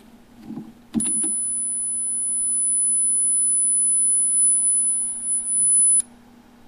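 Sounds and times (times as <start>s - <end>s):
faint low hum: 0.0s - 6.6s
10 kHz test tone: 1.0s - 6.0s.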